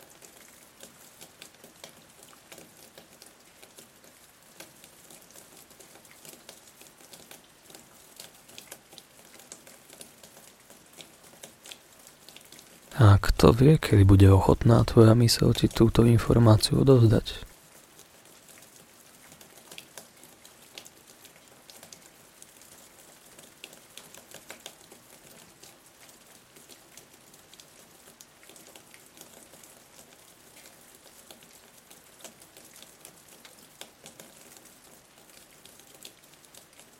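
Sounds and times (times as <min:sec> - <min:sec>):
raindrops falling on the ground: 0:00.0 - 0:36.9
speech: 0:13.0 - 0:17.5.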